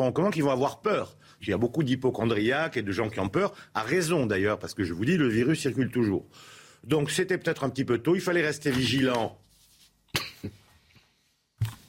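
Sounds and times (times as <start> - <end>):
speech: 0.0 - 9.4, 10.1 - 10.6
person coughing: 10.1 - 10.7.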